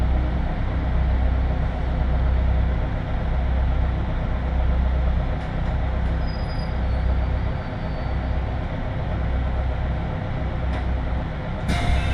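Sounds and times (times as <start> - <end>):
local 311 series train rumble heard from inside the carriage: 0.0 - 12.1
faint thin whine: 11.7 - 12.1.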